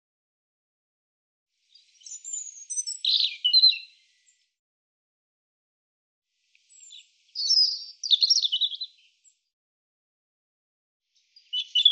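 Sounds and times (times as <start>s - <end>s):
European robin singing: 1.7s - 4.4s, 6.6s - 9.3s, 11.2s - 11.8s.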